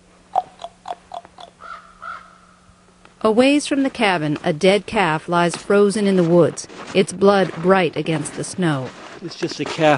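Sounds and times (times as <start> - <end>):
faint steady hum: 0.0 - 9.9
raven calling with harsh croaking notes: 0.3 - 2.6
speech: 3.2 - 9.9.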